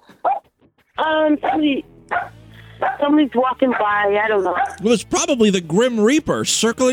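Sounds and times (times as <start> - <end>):
dog barking: 0.2 - 0.4, 1.4 - 4.8
speech: 1.0 - 1.9, 3.0 - 6.9.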